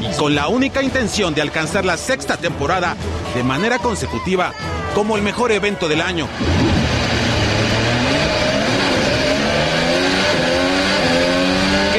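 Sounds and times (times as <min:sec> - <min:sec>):
speech: 0:00.2 - 0:07.0
Formula 1 race car engine revving: 0:06.3 - 0:11.9.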